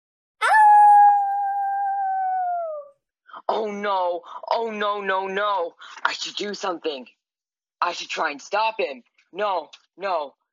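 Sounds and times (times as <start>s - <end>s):
wolf howling: 0.4s - 2.9s
speech: 3.5s - 7.2s, 7.8s - 10.4s.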